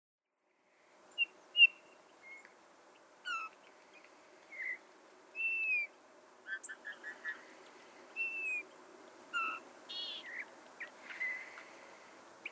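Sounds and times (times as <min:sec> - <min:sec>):
Eurasian bullfinch Pyrrhula pyrrhula quick chirps: 0:01.1 - 0:02.6, 0:03.2 - 0:12.5
Eurasian bullfinch Pyrrhula pyrrhula piping whistles: 0:01.2 - 0:02.5, 0:03.2 - 0:03.6, 0:04.5 - 0:04.8, 0:05.4 - 0:05.9, 0:08.2 - 0:08.7, 0:09.3 - 0:11.7.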